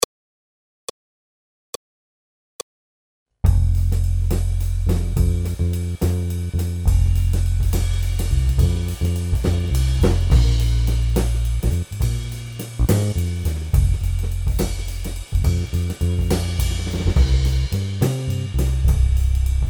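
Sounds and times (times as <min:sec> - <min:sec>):
blues accompaniment: 0:04.3 - 0:19.5.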